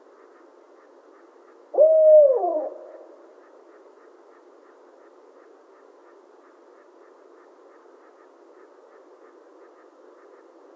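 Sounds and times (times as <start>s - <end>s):
Barred owl hooting: 1.7s - 3.8s.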